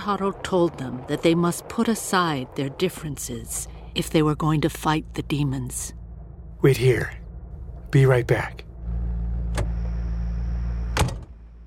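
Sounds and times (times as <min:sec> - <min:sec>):
speech: 0:00.0 - 0:06.0, 0:06.6 - 0:07.2, 0:07.9 - 0:08.7
faint high whine: 0:00.0 - 0:11.6
car engine idling: 0:03.6 - 0:11.6.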